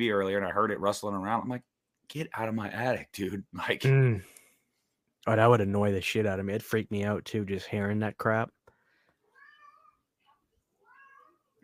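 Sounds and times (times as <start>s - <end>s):
speech: 0.0s - 4.3s, 5.2s - 8.6s
domestic male cat meowing inside the house: 9.3s - 10.0s, 10.8s - 11.6s.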